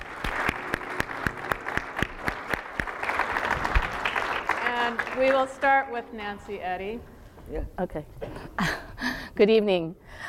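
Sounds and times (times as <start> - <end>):
audience applause: 0.0 - 5.8
speech: 5.2 - 8.8, 9.4 - 10.2.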